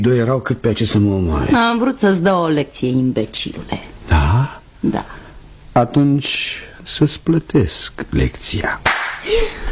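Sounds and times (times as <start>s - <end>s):
speech: 0.0s - 5.1s, 5.8s - 9.5s
sharp loud smacks like slaps across the face: 8.8s - 9.2s.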